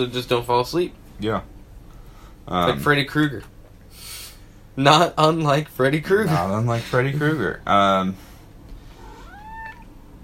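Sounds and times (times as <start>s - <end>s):
speech: 0.0s - 1.5s, 2.4s - 3.5s, 4.8s - 8.3s
cat meowing: 9.0s - 10.0s.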